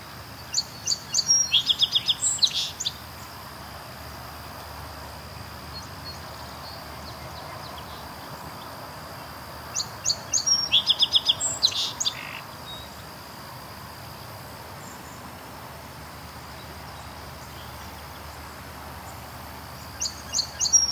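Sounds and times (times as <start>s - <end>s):
Song Sparrow singing along the Grand River in Waterloo, Ontario: 0.4s - 3.0s, 5.7s - 8.8s, 9.7s - 13.0s, 16.5s - 20.9s.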